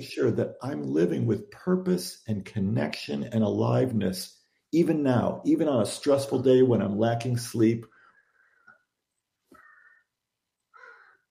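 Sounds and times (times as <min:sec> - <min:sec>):
speech: 0:00.0 - 0:07.9
crow cawing outside: 0:09.6 - 0:10.0, 0:10.8 - 0:11.2.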